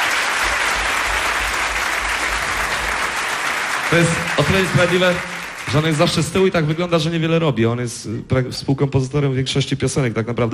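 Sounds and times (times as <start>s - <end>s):
concert audience applauding: 0.0s - 6.9s
speech: 3.9s - 10.5s.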